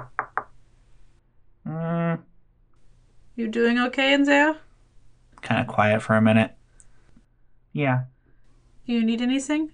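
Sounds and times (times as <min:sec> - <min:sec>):
sharp knocks on a bedroom door: 0:00.0 - 0:00.5
brief hummed vocal sound: 0:01.7 - 0:02.2
speech: 0:03.4 - 0:04.6, 0:05.4 - 0:06.6, 0:07.8 - 0:08.1, 0:08.9 - 0:09.7.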